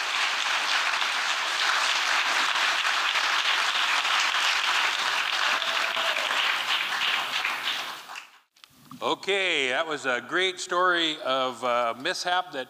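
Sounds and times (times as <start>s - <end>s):
sizable audience applauding after a story: 0.0s - 8.5s
speech: 9.0s - 12.6s.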